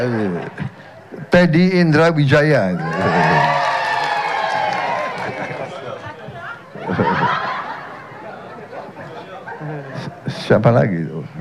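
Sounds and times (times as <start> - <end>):
speech: 0.0 - 3.5, 10.5 - 11.1
large crowd cheering and shouting: 2.6 - 8.0
laughter: 2.8 - 10.3.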